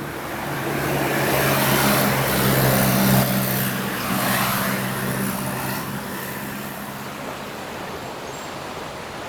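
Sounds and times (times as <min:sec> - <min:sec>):
low engine hum: 0:00.0 - 0:08.4
steady broadband roar of road traffic: 0:00.0 - 0:09.1.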